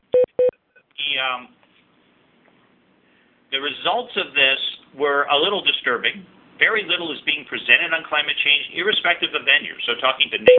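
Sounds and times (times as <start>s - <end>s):
short electronic beeps: 0.2s - 0.5s
speech: 1.2s - 1.6s, 3.5s - 10.5s.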